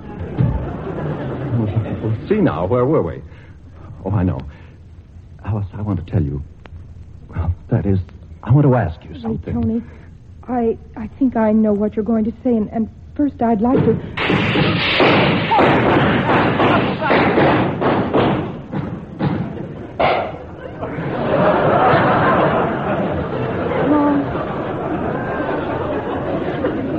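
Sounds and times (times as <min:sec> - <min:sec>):
laughter: 0:00.0 - 0:02.4, 0:19.4 - 0:26.9
speech: 0:02.0 - 0:03.4, 0:04.0 - 0:04.6, 0:05.5 - 0:06.5, 0:07.3 - 0:16.4
muffled firecracker bangs from a cellar where firecrackers are being made: 0:13.8 - 0:20.4.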